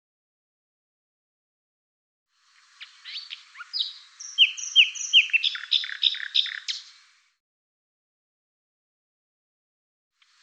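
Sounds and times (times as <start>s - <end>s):
bird song: 2.6s - 7.1s, 10.2s - 10.4s.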